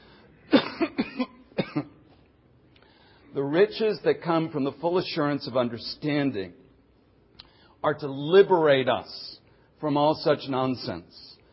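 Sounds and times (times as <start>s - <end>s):
person coughing: 0.5s - 2.1s
speech: 3.4s - 6.6s, 7.8s - 11.3s.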